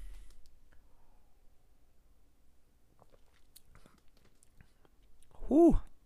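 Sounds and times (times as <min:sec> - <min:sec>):
person sipping beer: 0:03.0 - 0:05.4
speech: 0:05.5 - 0:05.9.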